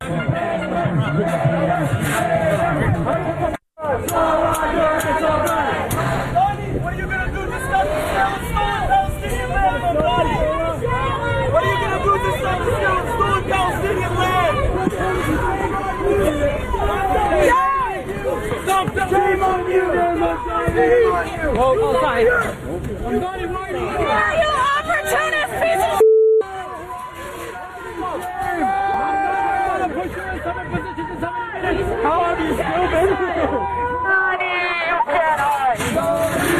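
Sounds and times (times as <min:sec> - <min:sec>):
dense protest crowd shouting, booing and jeering: 0:00.0 - 0:36.5.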